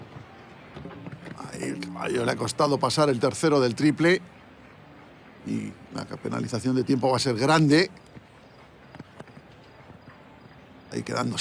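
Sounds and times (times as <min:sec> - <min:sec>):
horse hooves clip-clopping in show jumping: 0:00.0 - 0:03.4, 0:07.6 - 0:11.3
speech: 0:01.6 - 0:04.4, 0:05.4 - 0:08.1, 0:11.0 - 0:11.3.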